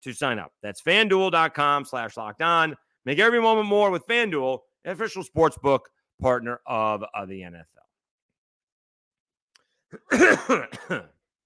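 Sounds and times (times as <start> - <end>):
speech: 0.0 - 7.8, 9.9 - 11.2
throat clearing from a person with something caught in the throat: 9.9 - 11.2
harsh coughing from a person with something caught in the throat: 9.9 - 11.3.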